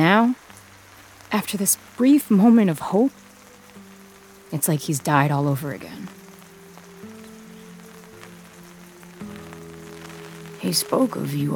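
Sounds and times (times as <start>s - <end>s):
speech: 0.0s - 0.4s, 1.3s - 3.2s, 4.5s - 6.2s, 10.6s - 11.5s
steady rain pattering: 0.0s - 11.5s.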